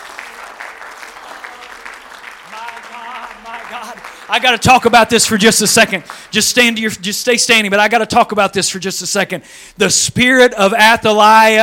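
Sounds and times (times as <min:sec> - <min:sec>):
congregation clapping hands in applause: 0:00.0 - 0:07.1
speech: 0:03.7 - 0:11.6.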